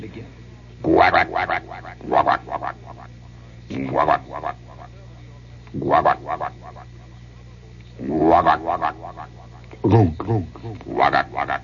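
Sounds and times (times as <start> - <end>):
speech: 0.2 - 2.8, 3.7 - 4.6, 5.7 - 6.6, 8.0 - 11.6
man imitating frog croaks with echo chamber: 0.8 - 3.1, 3.7 - 4.8, 5.7 - 6.9, 8.0 - 11.6.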